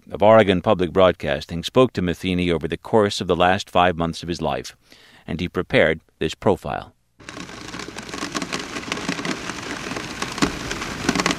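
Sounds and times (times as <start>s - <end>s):
speech: 0.1s - 7.5s
cold rain falling outdoors on a November day: 7.2s - 11.3s.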